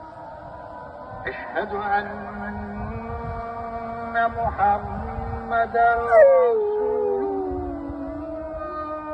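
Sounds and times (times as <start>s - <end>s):
speech: 1.2s - 2.8s, 4.1s - 6.7s
male Siberian Husky howling in a park: 6.0s - 9.0s.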